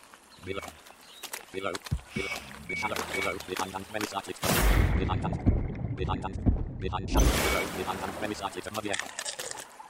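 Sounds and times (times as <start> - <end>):
person talking: 1.5 - 5.4, 6.0 - 9.3
short high electronic beeps from a video game: 2.2 - 3.4, 7.0 - 7.9.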